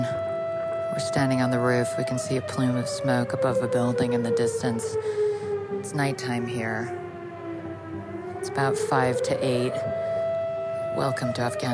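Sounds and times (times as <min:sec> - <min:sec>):
loud siren wailing in the city: 0:00.0 - 0:11.7
speech: 0:01.0 - 0:05.2, 0:05.9 - 0:07.0, 0:08.5 - 0:10.0, 0:11.0 - 0:11.7.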